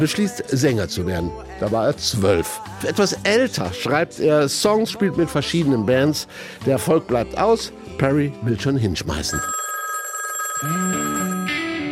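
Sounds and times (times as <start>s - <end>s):
speech: 0.0s - 9.6s, 10.6s - 10.9s
electronic telephone ringing sound effect: 9.3s - 11.9s.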